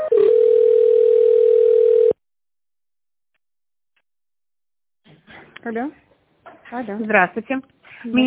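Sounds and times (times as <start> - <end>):
telephone line tones during business call transfer: 0.1 - 2.2
speech: 5.7 - 6.0, 6.7 - 8.2.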